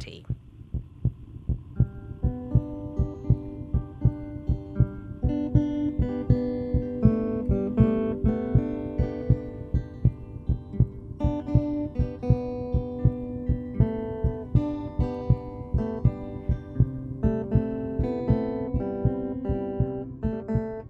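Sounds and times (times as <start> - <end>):
recorded heartbeat as rhythm section of a mellow song: 0.0 - 20.8
mellow song with sustained melodic instruments: 0.6 - 20.8.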